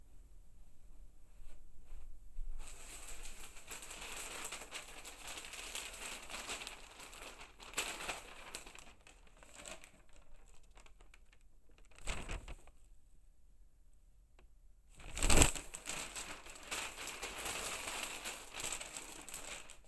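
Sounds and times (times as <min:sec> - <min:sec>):
newspaper handling recorded binaurally: 0:02.6 - 0:12.7, 0:15.0 - 0:19.8.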